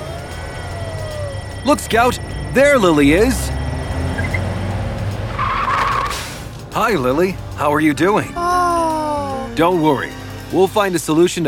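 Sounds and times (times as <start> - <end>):
high car tire squeal: 0.0 - 6.5
car driving through the streets with a low engine rumble: 0.0 - 10.2
speech: 1.6 - 3.5, 6.8 - 8.4, 9.6 - 11.4.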